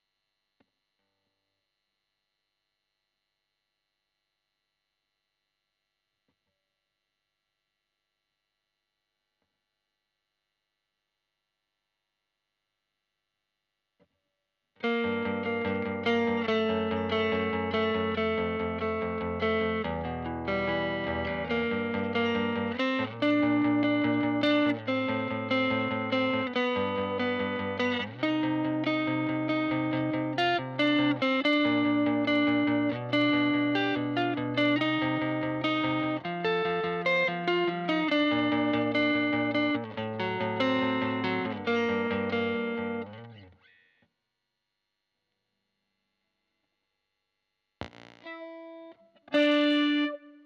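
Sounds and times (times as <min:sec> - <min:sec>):
guitar: 0:14.8 - 0:43.8, 0:47.8 - 0:50.4.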